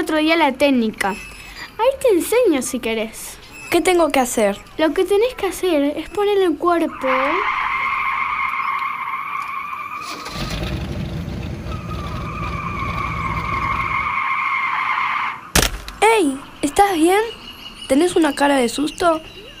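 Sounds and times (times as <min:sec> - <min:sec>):
speech: 0:00.1 - 0:07.6, 0:16.2 - 0:19.4
car tires screeching in a long squeal: 0:06.6 - 0:15.6
car engine roaring past: 0:10.0 - 0:14.2.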